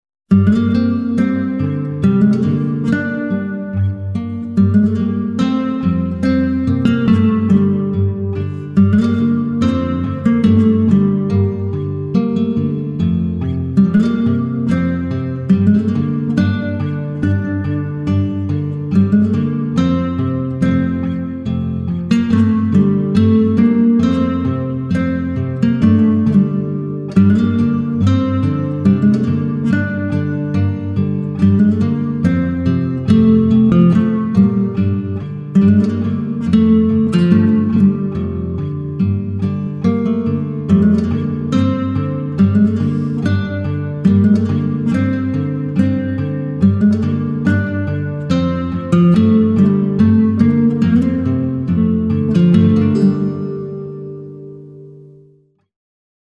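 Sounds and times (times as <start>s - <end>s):
spacey acoustic guitar: 0.3s - 55.7s.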